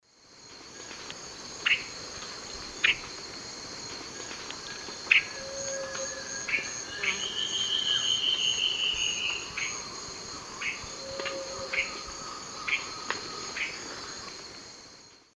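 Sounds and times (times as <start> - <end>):
Myrmoborus myotherinus song: 5.2 - 13.7.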